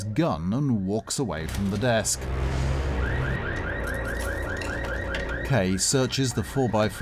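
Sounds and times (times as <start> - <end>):
speech: 0.1 - 2.6, 5.5 - 6.9
low rumbling hum: 1.4 - 5.6
car alarm sweeping up and down in whoops: 2.4 - 6.9.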